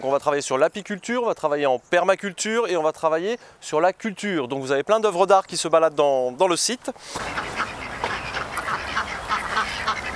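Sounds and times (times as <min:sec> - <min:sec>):
speech: 0:00.0 - 0:07.7
runner ducks quacking: 0:07.0 - 0:10.1.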